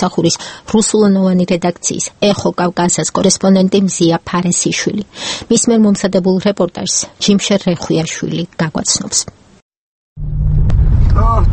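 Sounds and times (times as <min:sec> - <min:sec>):
speech: 0:00.0 - 0:09.4, 0:10.2 - 0:10.6, 0:11.2 - 0:11.5
car rumbling on a rough road: 0:10.2 - 0:11.5.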